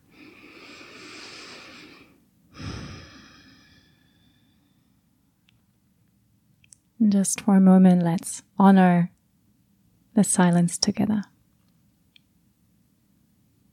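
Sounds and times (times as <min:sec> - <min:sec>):
deep breathing during a guided relaxation exercise: 0:00.0 - 0:05.0
speech: 0:07.0 - 0:09.1, 0:10.2 - 0:11.3.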